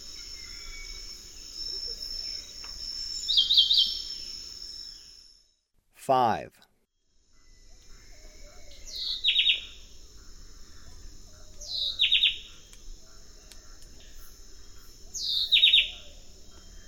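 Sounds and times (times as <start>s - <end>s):
constant high insect hum: 0.0s - 5.5s, 7.1s - 16.8s
white-breasted wood-wren singing in eastern lowlands of South America: 0.1s - 5.1s, 7.9s - 9.8s, 10.6s - 12.8s, 14.8s - 16.8s
speech: 6.1s - 6.6s.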